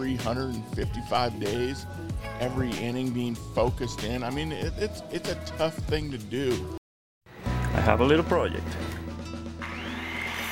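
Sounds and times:
speech: 0.0s - 6.8s, 7.8s - 9.0s
power tool motor humming and revving up: 9.6s - 10.5s.

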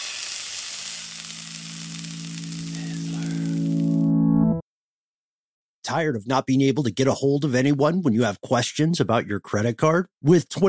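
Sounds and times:
loud steady sizzle: 0.0s - 4.1s
low humming drone: 1.1s - 4.5s
speech: 5.9s - 10.6s.

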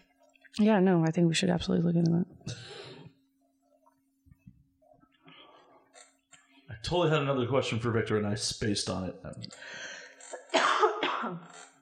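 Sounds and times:
speech: 0.6s - 2.8s, 6.8s - 10.0s
harsh raspy coughs: 10.3s - 11.6s.

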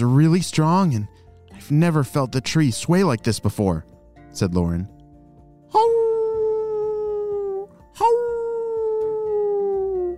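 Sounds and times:
speech: 0.0s - 5.0s
wolf howling: 5.8s - 10.1s.

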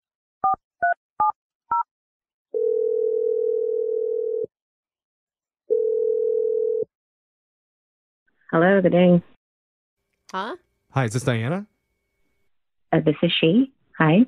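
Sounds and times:
long steady low telephone ringback tones: 2.6s - 4.5s, 5.7s - 6.9s
speech: 8.5s - 9.3s, 10.3s - 11.7s, 12.9s - 14.2s.

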